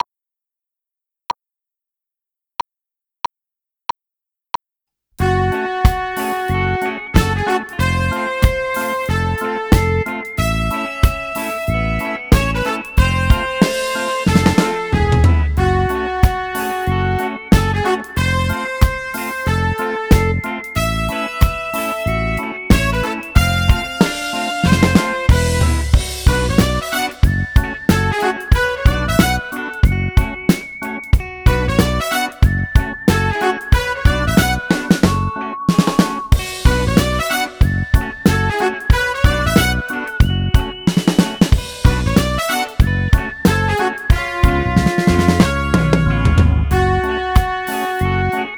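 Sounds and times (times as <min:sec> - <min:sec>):
keyboard music: 0:05.2 - 0:48.5.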